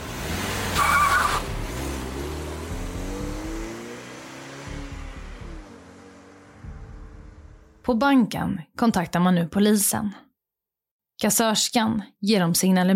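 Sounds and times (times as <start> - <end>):
car tires squealing while pulling away hard: 0.0 - 2.5
car engine revving and droning: 0.0 - 7.9
speech: 7.9 - 10.2, 11.2 - 12.9.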